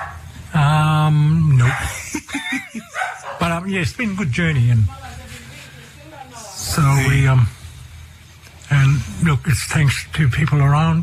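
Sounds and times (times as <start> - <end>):
laughter: 1.6 - 3.4
speech: 2.2 - 5.0, 6.8 - 7.6, 8.7 - 11.0
dog yipping: 3.0 - 3.5.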